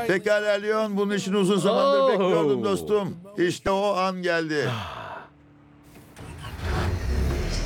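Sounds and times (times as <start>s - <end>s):
speech: 0.1s - 5.0s
car engine cranking and starting on first try: 5.9s - 7.6s.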